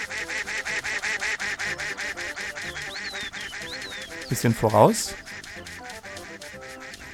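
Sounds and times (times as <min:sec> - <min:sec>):
video game duck quacking: 0:00.0 - 0:07.1
speech: 0:04.3 - 0:05.2.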